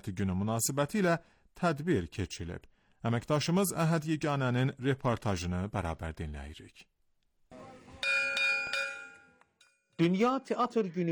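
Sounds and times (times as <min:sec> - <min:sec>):
speech: 0:00.0 - 0:06.9, 0:10.0 - 0:11.0
bell ringing for a National Performing Arts Day ceremony: 0:08.0 - 0:09.8.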